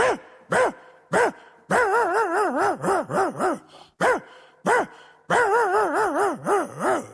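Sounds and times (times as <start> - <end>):
person imitating a small dog barking with high yappy yips: 0.0 - 7.1.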